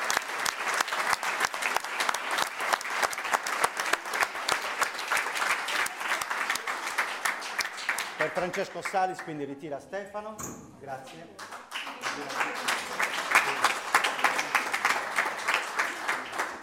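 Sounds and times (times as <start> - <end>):
audience applause for the musicians: 0.0 - 9.4, 11.4 - 16.6
speech: 8.2 - 11.5, 12.2 - 13.8.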